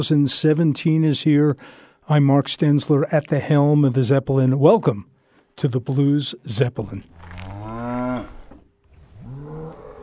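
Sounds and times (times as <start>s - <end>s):
speech: 0.0s - 7.4s
faint noise: 0.0s - 10.0s
cow mooing: 7.1s - 8.5s, 9.1s - 10.0s.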